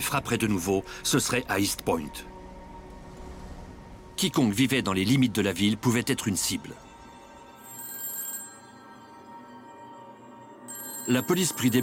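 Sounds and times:
speech: 0.0 - 2.4, 4.2 - 6.8, 11.1 - 11.8
telephone ringing with electronic trill: 7.4 - 11.8.

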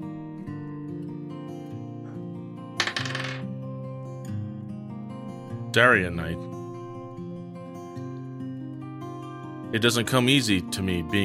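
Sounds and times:
steady sustained music: 0.0 - 11.2
dice clattering across a hard tabletop: 2.8 - 3.4
speech: 5.8 - 6.5, 9.7 - 11.2.

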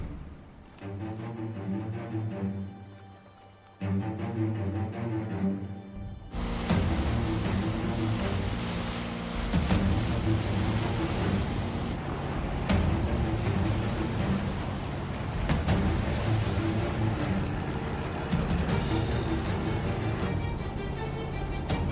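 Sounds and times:
churning water and surf as a boat pushes through ocean waves in fog: 0.0 - 21.9
low engine drone: 5.1 - 21.9.

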